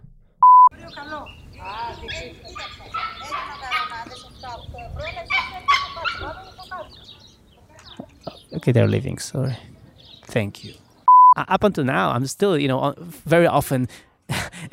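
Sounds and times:
short electronic beep: 0:00.4 - 0:00.7, 0:11.1 - 0:11.4
birds singing outdoors on a warm day: 0:00.7 - 0:11.1
speech: 0:00.9 - 0:07.2, 0:08.6 - 0:09.7, 0:10.3 - 0:10.8, 0:11.4 - 0:14.7.

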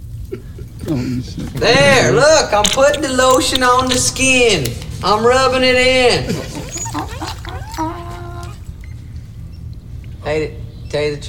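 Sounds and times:
low hum: 0:00.0 - 0:11.2
speech: 0:00.3 - 0:06.5, 0:10.3 - 0:11.2
dog whimpering and whining: 0:06.0 - 0:09.1.

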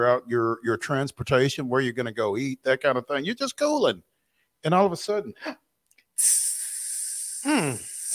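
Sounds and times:
speech: 0:00.0 - 0:05.6, 0:06.2 - 0:06.5, 0:07.4 - 0:08.1
snake hissing: 0:06.2 - 0:08.1.

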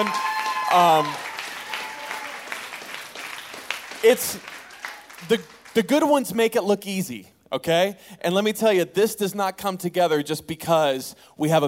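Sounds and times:
speech: 0:00.0 - 0:01.2, 0:04.0 - 0:04.5, 0:05.2 - 0:11.6
audience applauding: 0:00.0 - 0:06.1.

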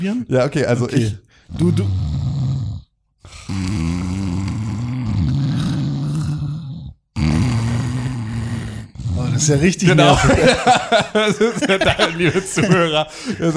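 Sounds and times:
speech: 0:00.0 - 0:02.1, 0:03.2 - 0:04.1, 0:09.4 - 0:13.5
two voices imitating a person and a dog snoring: 0:01.4 - 0:10.0
laughter: 0:09.9 - 0:13.5.

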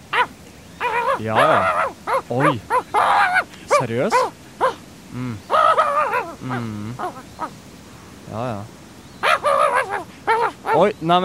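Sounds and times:
dog barking and yipping: 0:00.1 - 0:04.8, 0:09.2 - 0:11.2
speech: 0:01.2 - 0:03.1, 0:03.8 - 0:04.3, 0:05.1 - 0:05.5, 0:06.4 - 0:07.6, 0:08.3 - 0:08.8, 0:10.7 - 0:11.2.

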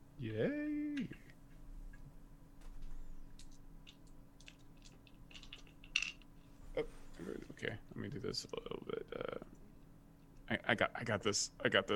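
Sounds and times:
speech: 0:00.2 - 0:01.1, 0:08.3 - 0:09.0, 0:10.7 - 0:11.9
black dice rolling across a table: 0:04.4 - 0:06.2.

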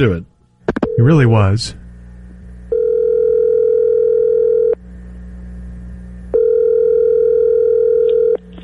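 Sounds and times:
speech: 0:00.0 - 0:00.3, 0:01.0 - 0:01.8
outgoing phone call ring tones: 0:02.7 - 0:04.8, 0:06.3 - 0:08.4.

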